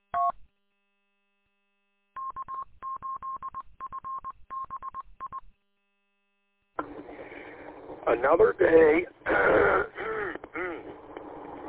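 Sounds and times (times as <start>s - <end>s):
speech: 8.1s - 9.9s
throat clearing by someone with a frog in the throat: 9.3s - 11.0s.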